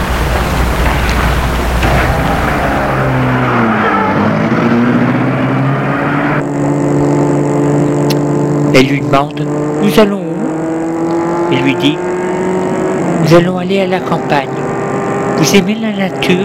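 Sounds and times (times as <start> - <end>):
steady high hum: 0.0 - 3.4
car engine starting and driving off: 0.0 - 16.4
speech: 8.8 - 10.2, 11.5 - 12.1, 13.2 - 14.6, 15.4 - 16.4.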